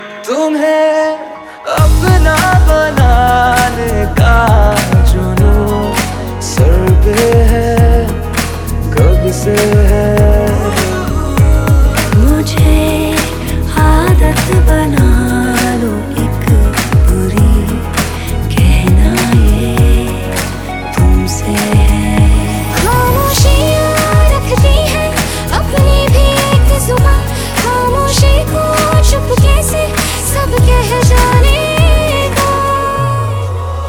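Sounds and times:
Hindi romantic ringtone melody: 0.0s - 33.2s.

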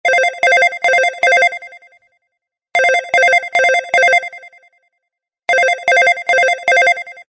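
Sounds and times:
business phone ringtone: 0.1s - 2.0s, 2.8s - 4.8s, 5.5s - 7.3s.

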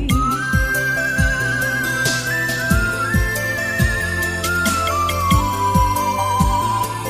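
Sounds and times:
Bengali ringtone: 0.1s - 7.0s.

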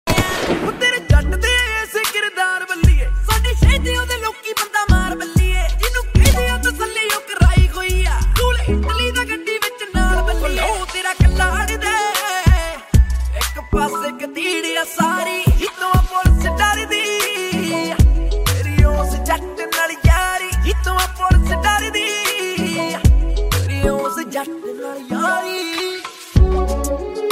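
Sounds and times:
Punjabi police song ringtone: 0.2s - 27.3s.

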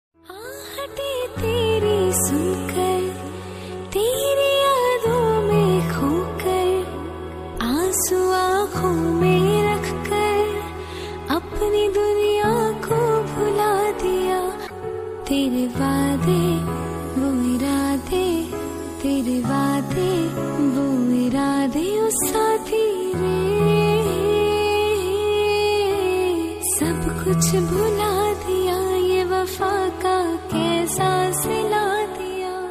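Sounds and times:
woman's voice: 0.3s - 32.6s.

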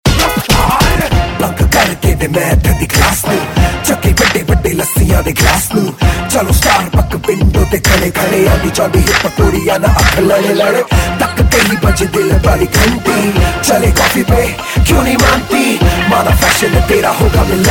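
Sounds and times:
rap ringtone: 0.1s - 17.6s.

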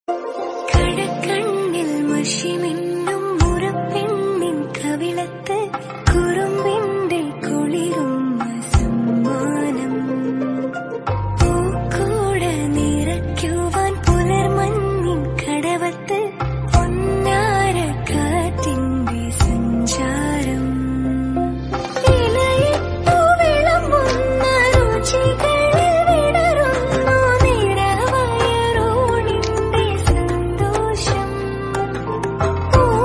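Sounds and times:
woman singing a love song ringtone: 0.2s - 33.0s.

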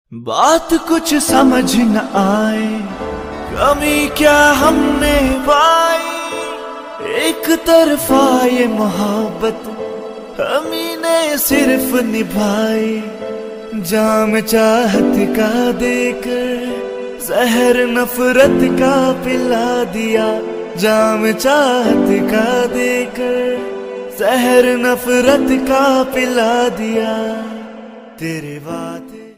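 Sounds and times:
sad Hindi song: 0.1s - 29.3s.

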